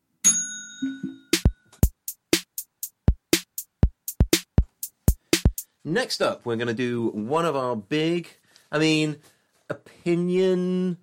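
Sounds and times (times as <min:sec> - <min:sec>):
bell dinging: 0:00.2 - 0:01.7
rapid rhythmic run of sharp loud percussive hits: 0:00.8 - 0:05.7
speech: 0:05.8 - 0:11.0.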